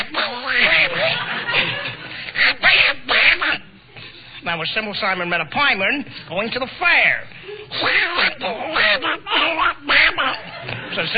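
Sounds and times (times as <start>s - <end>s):
raspy cartoon duck voice impression quacking speech: 0.0s - 1.2s, 2.4s - 3.7s, 7.7s - 10.4s
laughter: 0.6s - 2.3s, 8.8s - 11.1s
speech: 4.6s - 11.1s.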